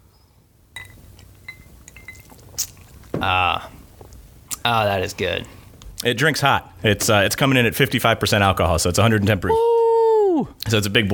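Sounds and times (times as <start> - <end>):
glasses clinking in a toast: 0.7 - 3.2
speech: 3.2 - 3.8, 4.6 - 9.7, 10.4 - 11.1.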